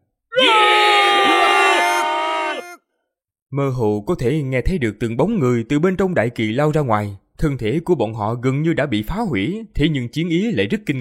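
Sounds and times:
massed crowd of voices giving battle cries of an ancient war: 0.3s - 2.8s
speech: 3.5s - 11.0s.

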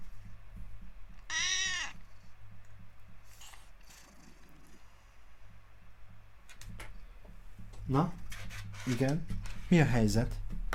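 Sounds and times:
low hum: 0.0s - 10.7s
cat meowing: 1.2s - 2.1s
speech: 7.9s - 10.4s.

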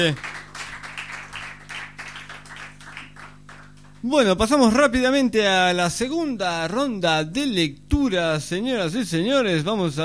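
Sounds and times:
speech: 0.0s - 0.3s, 4.0s - 10.0s
audience applause at a poetry reading night: 0.0s - 4.0s
low constant hum: 0.0s - 10.0s.

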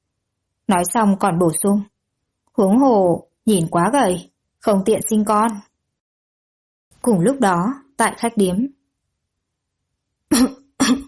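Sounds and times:
speech: 0.7s - 1.9s, 2.6s - 5.7s, 7.0s - 8.8s, 10.3s - 11.0s
person coughing dryly in an inn: 10.3s - 11.0s.

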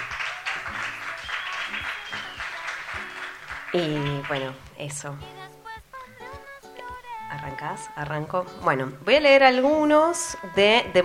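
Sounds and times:
audience applause at an in-person literary reading event: 0.0s - 4.6s
speech: 3.7s - 5.4s, 7.4s - 11.0s.

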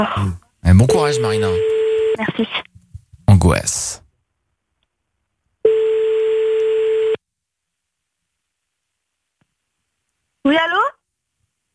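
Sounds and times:
speech: 0.0s - 2.7s, 3.4s - 4.0s
telephone ringback tone while calling someone: 0.9s - 2.2s, 5.6s - 7.2s.

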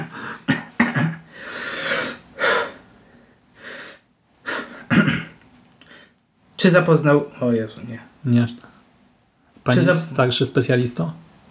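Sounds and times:
person taking deep breaths: 1.3s - 4.9s
speech: 6.6s - 8.7s, 9.6s - 11.3s.

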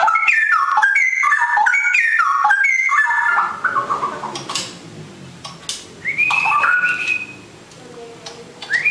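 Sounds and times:
Oriental magpie-robin whistling: 0.0s - 4.3s, 6.0s - 7.5s, 8.6s - 8.8s.

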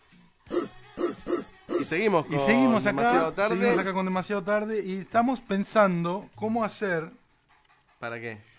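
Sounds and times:
person imitating a dog barking with hoarse woofs: 0.5s - 2.0s
speech: 1.9s - 7.2s, 8.0s - 8.5s.

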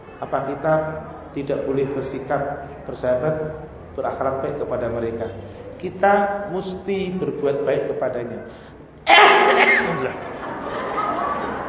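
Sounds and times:
low noise in a mosque: 0.0s - 11.6s
speech: 0.2s - 10.3s
person sneezing during a lecture in a mosque: 9.1s - 10.0s
laughter: 9.2s - 11.6s.

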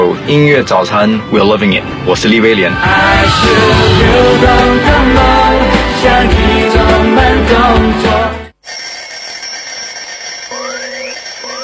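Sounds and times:
speech: 0.1s - 5.4s, 6.0s - 8.4s
electronic alarm clock ringing with bell-like tones: 8.6s - 11.6s.

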